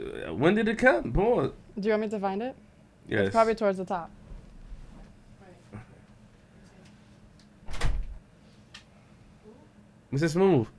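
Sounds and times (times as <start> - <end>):
speech: 0.4 - 4.2, 10.1 - 10.7
door slamming shut with a heavy thud: 7.7 - 8.1.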